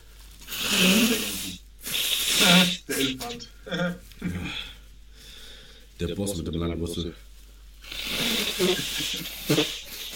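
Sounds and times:
person blowing their nose: 0.4s - 3.4s, 7.8s - 10.1s
speech: 3.0s - 4.3s, 6.0s - 7.3s, 8.6s - 9.8s.

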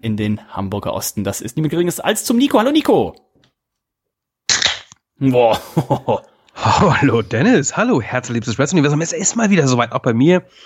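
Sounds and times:
speech: 0.0s - 3.3s, 5.2s - 10.6s
drink can cracking open with fizzing hiss: 4.5s - 5.0s
laughter: 5.5s - 7.1s.

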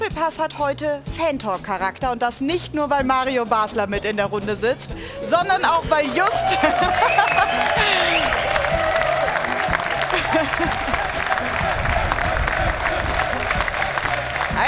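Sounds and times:
speech: 0.2s - 8.5s
crowd voices: 5.1s - 14.6s
laughter: 5.2s - 14.4s
scattered cheers: 5.2s - 14.6s
studio audience applause: 6.0s - 14.6s.

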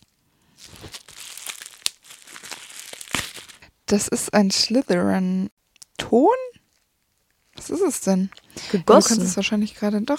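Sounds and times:
plastic bubble wrap crinkling as a package is unwrapped: 0.0s - 3.7s, 6.6s - 8.6s
speech: 3.9s - 6.5s, 7.7s - 10.1s.

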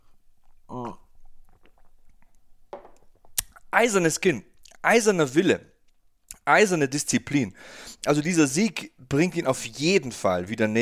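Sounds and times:
person sipping coffee from a cup: 0.0s - 3.7s
speech: 3.8s - 5.7s, 6.5s - 10.7s.

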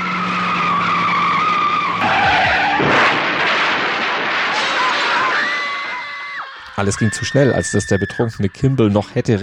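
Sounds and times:
Mazda RX-7 sports car engine roaring past at about 120 km/h: 0.0s - 3.5s
sports car tires skidding and squealing: 0.0s - 8.9s
speech: 6.8s - 9.4s.

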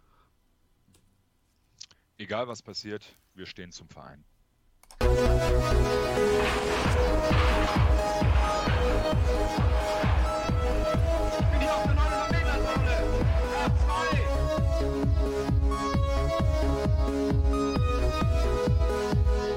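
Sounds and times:
speech: 2.3s - 4.3s
upbeat podcast outro music jingle with drum beat and layered instruments: 5.0s - 19.5s.

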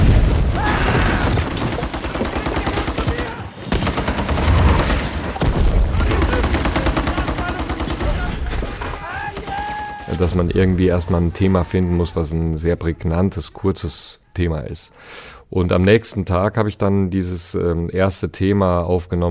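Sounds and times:
heavy booming film battle explosions: 0.0s - 1.8s, 3.7s - 6.6s
rapid machine-gun fire in a film battle: 0.0s - 10.0s
speech: 10.2s - 19.2s.

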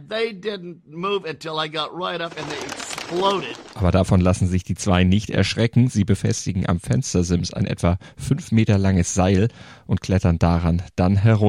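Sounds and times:
speech: 0.1s - 11.4s
flapping wings of an enormous flock of pigeons taking flight: 2.3s - 3.9s.

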